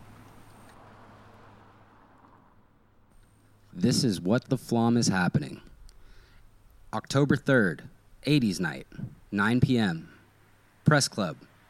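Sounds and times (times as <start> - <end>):
car interior road noise on a boulevard: 0.0 - 5.5
speech: 3.8 - 5.7, 6.9 - 10.1, 10.8 - 11.5.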